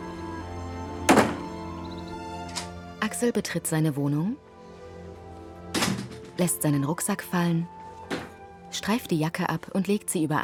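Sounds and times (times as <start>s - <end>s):
front door of a brown brick house unlocked with keys and opened: 1.1s - 1.6s, 5.7s - 6.4s, 8.1s - 8.4s
speech: 3.0s - 4.5s, 6.4s - 7.8s, 8.7s - 10.4s.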